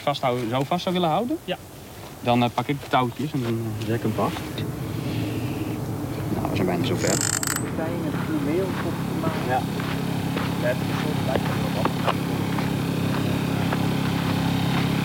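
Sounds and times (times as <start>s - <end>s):
speech: 0.0s - 4.8s, 6.6s - 10.0s, 10.6s - 12.3s
generator powering lamps for attracting insects humming: 0.0s - 15.0s.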